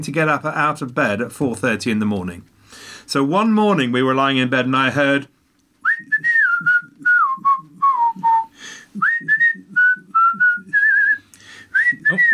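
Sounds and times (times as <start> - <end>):
speech: 0.0 - 5.4, 12.1 - 12.3
person whistling a lively tune: 5.8 - 12.3.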